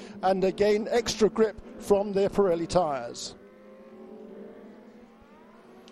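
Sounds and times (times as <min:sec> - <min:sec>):
Lamborghini Super Trofeo race cars droning on a circuit: 0:00.0 - 0:05.9
speech: 0:00.2 - 0:03.4.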